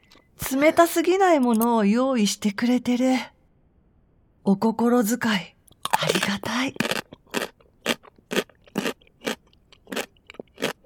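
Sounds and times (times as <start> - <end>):
speech: 0.5 - 3.3, 4.4 - 6.9
crunchy Japanese pickles being chewed: 5.7 - 10.8.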